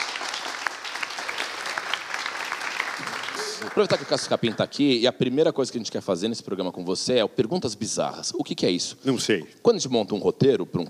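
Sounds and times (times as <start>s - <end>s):
room full of people clapping: 0.0s - 5.0s
speech: 3.6s - 10.8s.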